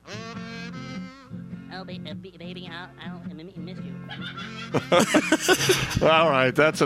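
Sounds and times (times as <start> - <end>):
kazoo playing a wavering tune: 0.0 - 5.0
speech: 1.8 - 6.8
laughter: 4.1 - 6.3.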